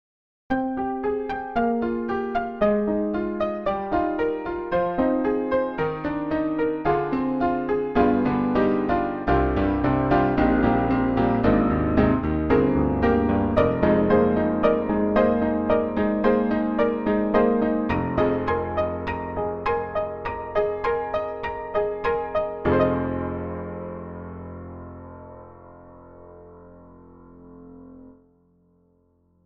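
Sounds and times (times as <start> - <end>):
broken distorted piano: 0.5 - 28.2.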